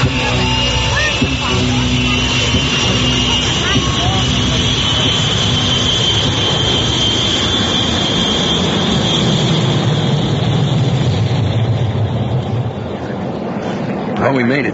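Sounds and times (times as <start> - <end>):
faint voices murmuring: 0.0 - 7.2, 12.5 - 14.7
airplane engine roar on a passenger flight: 0.0 - 14.7
speech: 14.3 - 14.7.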